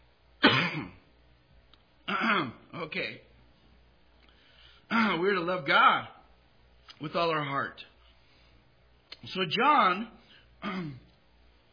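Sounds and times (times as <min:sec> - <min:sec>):
person clearing their throat: 0:00.4 - 0:01.1, 0:02.1 - 0:02.7, 0:10.6 - 0:11.2
speech: 0:02.4 - 0:03.3, 0:04.9 - 0:06.2, 0:07.0 - 0:07.9, 0:09.2 - 0:11.0.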